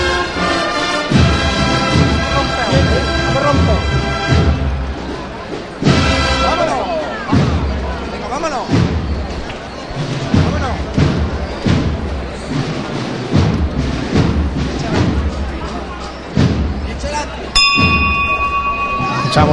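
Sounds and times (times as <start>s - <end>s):
crowd murmur: 0.0s - 19.5s
people talking: 5.0s - 13.0s, 14.6s - 19.5s
bell strike signalling a procession float: 17.6s - 19.5s.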